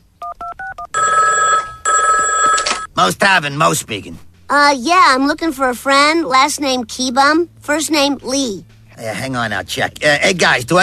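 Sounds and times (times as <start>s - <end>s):
telephone ringing for a prank call to a tavern: 0.2s - 3.0s
speech: 3.0s - 10.8s.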